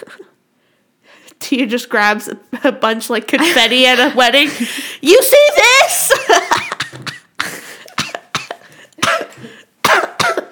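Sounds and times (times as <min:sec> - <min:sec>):
speech: 0:01.5 - 0:06.7
harsh coughing fit: 0:06.2 - 0:10.5.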